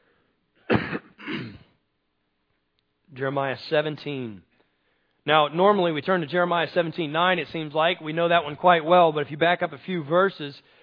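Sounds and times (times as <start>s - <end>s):
person coughing into a microphone: 0.6s - 1.8s
speech: 3.2s - 4.5s, 5.2s - 10.8s.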